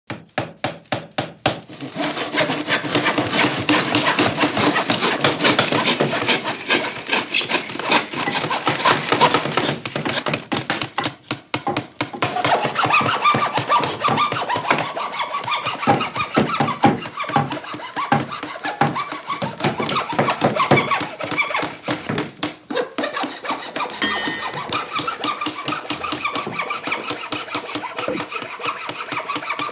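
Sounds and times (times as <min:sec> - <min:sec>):
close-up hammer on a large construction: 0:00.1 - 0:29.7
saw on a large construction: 0:00.1 - 0:29.7.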